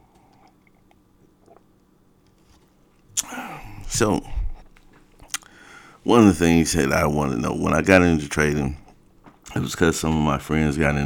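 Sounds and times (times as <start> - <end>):
person sipping a drink: 0.1 - 5.6
faint swallow: 0.2 - 1.8, 3.1 - 5.6
mouth clicks: 3.1 - 4.6, 5.2 - 5.6
speech: 3.2 - 4.4, 6.0 - 8.8, 9.5 - 11.0.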